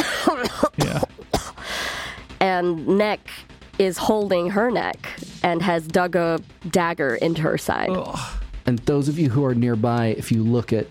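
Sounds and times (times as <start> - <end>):
person coughing with wet spluttering coughs: 0.0 - 1.6
speech: 2.6 - 10.8.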